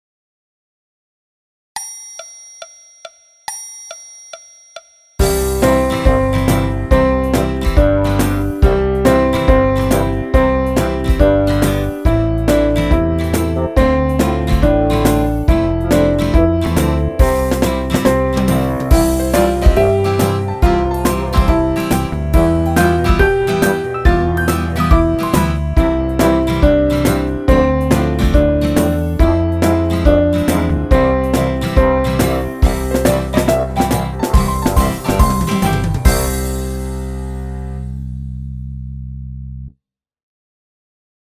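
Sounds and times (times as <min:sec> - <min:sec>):
piano with orchestra: 0:05.2 - 0:36.8.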